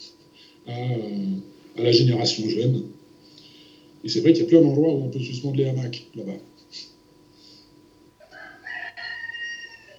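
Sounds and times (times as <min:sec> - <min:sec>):
speech: 0:00.7 - 0:01.2, 0:01.8 - 0:03.0, 0:04.0 - 0:06.9
rooster crowing: 0:08.2 - 0:09.9.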